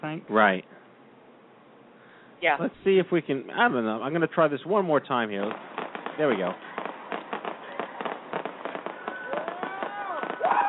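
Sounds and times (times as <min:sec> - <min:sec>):
speech: 0:00.0 - 0:00.8, 0:02.4 - 0:06.7
illegal fireworks popping and crackling in a city: 0:03.6 - 0:10.6
whistling fireworks: 0:05.2 - 0:10.6.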